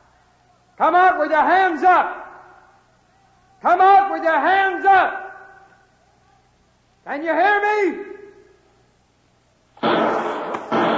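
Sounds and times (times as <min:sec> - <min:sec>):
speech: 0:00.8 - 0:02.2, 0:03.6 - 0:05.2, 0:07.1 - 0:08.1
gunshots fired from a lower window during an armed standoff: 0:09.8 - 0:10.9.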